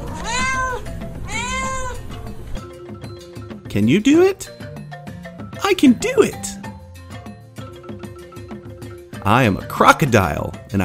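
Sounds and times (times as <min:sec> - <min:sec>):
cat meowing: 0:00.0 - 0:02.2
speech: 0:03.7 - 0:04.6, 0:05.7 - 0:06.6, 0:09.2 - 0:10.8.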